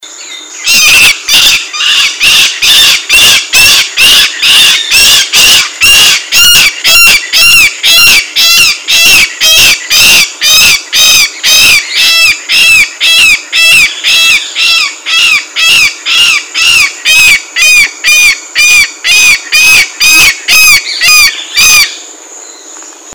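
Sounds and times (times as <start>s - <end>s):
yellow-headed caracara calling: 0.0s - 23.1s.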